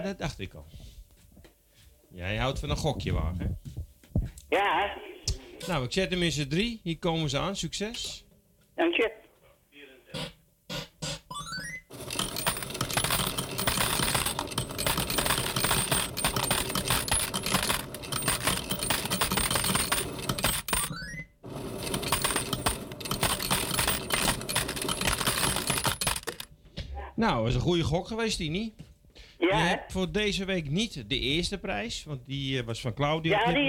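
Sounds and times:
speech: 0.0s - 0.9s, 2.1s - 3.7s, 4.5s - 8.2s, 8.8s - 9.2s, 27.2s - 28.8s, 29.4s - 33.6s
coins dropping into a game machine: 11.9s - 26.5s.

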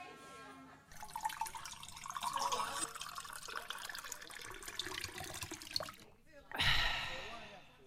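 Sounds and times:
water splashing into a glass: 0.9s - 6.1s
person gulping water: 1.0s - 7.0s
breathy exhale: 6.6s - 7.8s.

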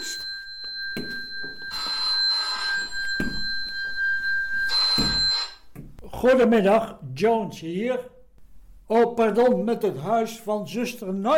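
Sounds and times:
telephone ringing with an electronic trill: 0.0s - 5.7s
speech: 1.0s - 1.2s, 6.2s - 8.2s, 8.9s - 11.3s.

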